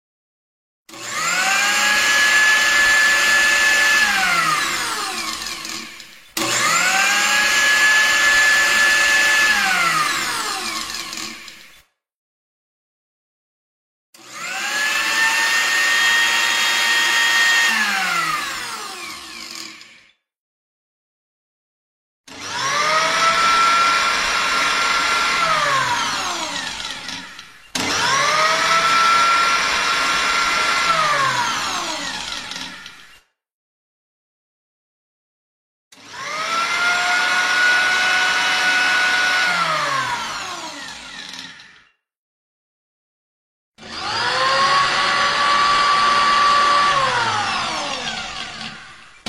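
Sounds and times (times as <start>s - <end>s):
blender running: 0.9s - 11.8s, 14.2s - 20.2s, 22.3s - 33.2s, 35.9s - 41.9s, 43.8s - 49.2s.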